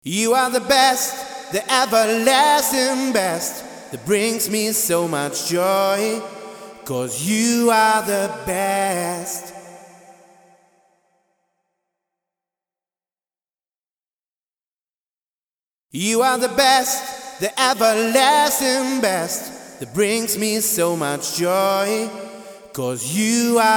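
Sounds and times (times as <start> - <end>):
wet male vocal variations: 0.0 - 10.4, 16.0 - 23.7.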